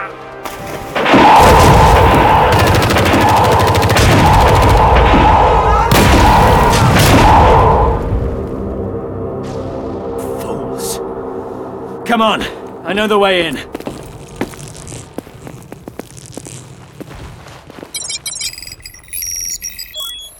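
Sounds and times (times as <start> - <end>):
soldiers opening fire with rapid gunfire: 0.9 - 7.4
speech: 12.1 - 13.8.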